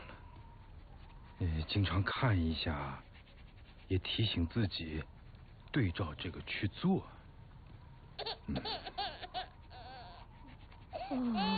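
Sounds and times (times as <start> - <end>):
speech: 1.4 - 3.1, 3.9 - 7.2, 8.2 - 9.0, 11.1 - 11.5
infant crying and fussing: 8.2 - 10.3, 10.9 - 11.5.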